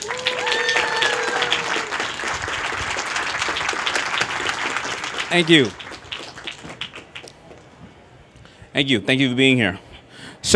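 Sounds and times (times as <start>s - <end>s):
cheers: 0.0s - 4.3s
large audience applauding a speaker: 0.0s - 7.6s
speech: 5.3s - 5.8s, 8.8s - 9.9s.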